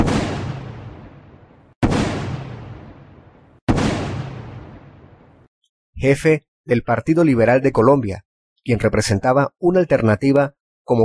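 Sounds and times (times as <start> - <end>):
gunshots with long rumbling echo in Bogotá Colombia: 0.0 - 5.5
speech: 6.0 - 11.0.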